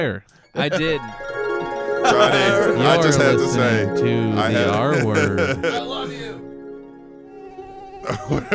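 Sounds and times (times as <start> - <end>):
speech: 0.0 - 1.4, 2.0 - 6.2, 8.1 - 8.5
laughter: 1.6 - 6.4, 8.0 - 8.5
thin steady mosquito whine: 7.2 - 8.2.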